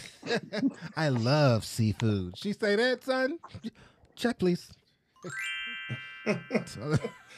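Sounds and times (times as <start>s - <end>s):
laughter: 0.0s - 1.2s, 6.3s - 7.3s
speech: 0.2s - 7.3s
sparkly magical pixie-dust chime sound effect: 5.2s - 7.3s.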